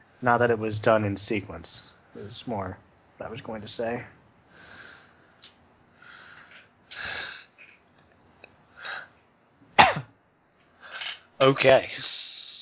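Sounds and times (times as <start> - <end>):
speech: 0.2 - 4.2, 11.4 - 12.3
person giving raspy hacking coughs: 9.8 - 10.1.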